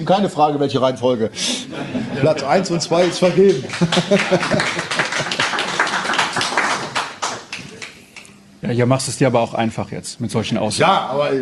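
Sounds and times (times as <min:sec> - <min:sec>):
speech: 0:00.0 - 0:05.0, 0:08.7 - 0:11.3
laughter: 0:01.5 - 0:06.0
crowd applauding: 0:02.9 - 0:08.0.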